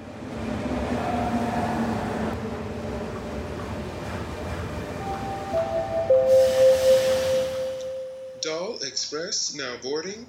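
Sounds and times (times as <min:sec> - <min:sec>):
train rumbling into a station: 0:00.0 - 0:08.6
long steady whistle-like tone: 0:06.1 - 0:08.4
people talking: 0:08.4 - 0:10.2.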